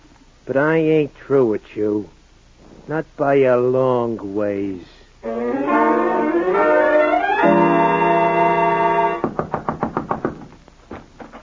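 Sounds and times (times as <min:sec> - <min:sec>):
speech: 0:00.5 - 0:02.2, 0:02.9 - 0:06.0
rising musical sting: 0:05.2 - 0:09.2
loud pounding knocks on a door: 0:09.2 - 0:10.5.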